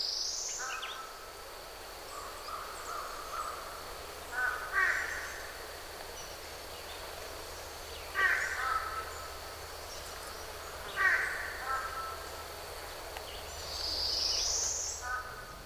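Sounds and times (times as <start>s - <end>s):
steady insect-like hum: 0.0s - 15.6s
American crows and fish crows cawing: 2.2s - 5.5s, 8.1s - 9.4s, 10.8s - 12.4s, 15.0s - 15.6s.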